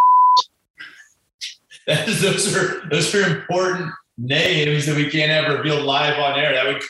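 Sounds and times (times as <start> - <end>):
high-pitched censor bleep over a word: 0.0 - 0.4
laughter: 1.4 - 3.9
speech: 1.9 - 6.8.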